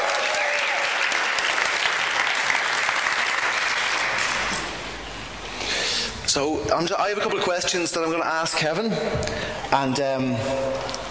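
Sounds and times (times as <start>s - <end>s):
audience applause: 0.0s - 4.9s
speech: 6.3s - 11.0s.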